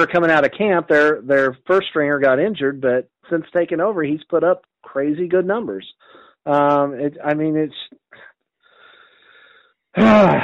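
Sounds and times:
speech: 0.0 - 8.2, 10.0 - 10.4
man breathing heavily and wheezing, out of breath: 6.0 - 6.4, 8.6 - 9.8.

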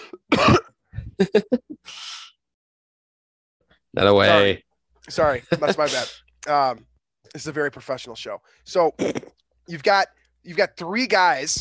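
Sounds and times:
person coughing: 0.1 - 0.7, 9.0 - 9.3
speech: 1.2 - 2.3, 4.0 - 11.5
throat clearing: 9.0 - 9.4.

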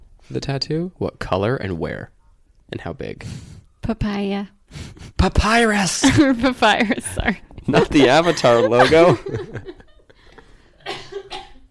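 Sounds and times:
speech: 0.3 - 9.8
laughter: 7.7 - 10.6
raspy breathy coughs: 10.8 - 11.6.

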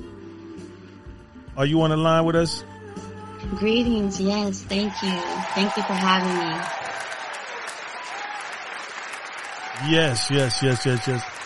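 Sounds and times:
speech: 1.6 - 2.7, 3.5 - 6.8, 9.8 - 11.4
studio audience applauding: 4.7 - 11.4.

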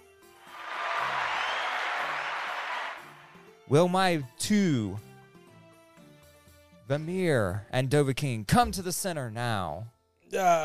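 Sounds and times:
crowd cheering: 0.4 - 3.5
speech: 3.7 - 5.1, 6.9 - 10.6.

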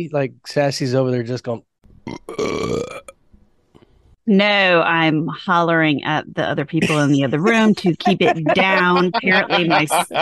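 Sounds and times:
speech: 0.0 - 2.8, 4.3 - 10.2
loud croaky belch: 2.0 - 3.2
laughter: 7.8 - 10.2.

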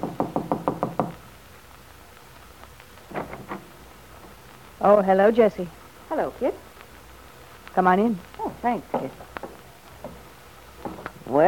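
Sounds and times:
knocking on a wooden bungalow door: 0.0 - 1.1
faint hiss: 0.0 - 11.4
speech: 4.8 - 6.7, 7.8 - 9.2, 11.3 - 11.4.

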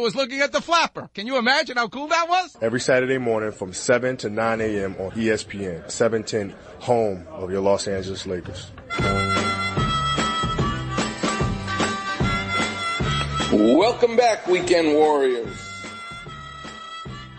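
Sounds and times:
speech: 0.0 - 9.5, 13.6 - 15.6
steady rhythmic backing track: 8.7 - 17.3
harmonica playing with bending wavering notes: 8.9 - 17.3.

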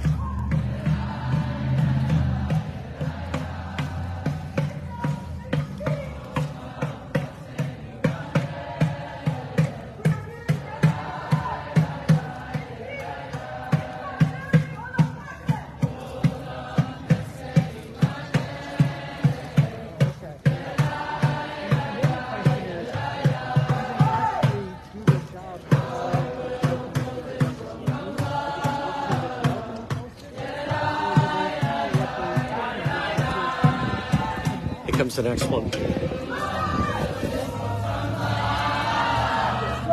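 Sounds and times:
large protest crowd shouting and chanting: 0.0 - 39.9
war drum pounding: 0.0 - 39.9
speech: 35.2 - 36.0.

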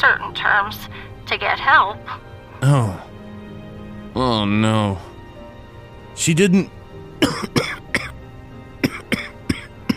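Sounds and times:
speech: 0.0 - 3.2, 4.2 - 5.1, 6.2 - 7.8
person coughing: 7.2 - 8.2, 8.8 - 9.9.

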